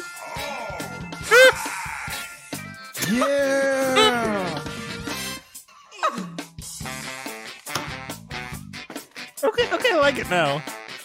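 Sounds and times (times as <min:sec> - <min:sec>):
video game main theme music with bright sustained tones: 0:00.0 - 0:05.5, 0:06.8 - 0:11.0
swooping cartoonish yelp-like sound effects sliding up and down: 0:01.2 - 0:01.7, 0:03.0 - 0:04.6
speech: 0:03.1 - 0:03.8, 0:09.6 - 0:10.7.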